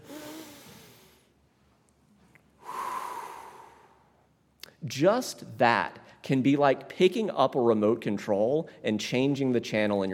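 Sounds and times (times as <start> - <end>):
deep breath taken slowly: 0.0 - 1.4, 2.6 - 4.2
speech: 4.8 - 10.1.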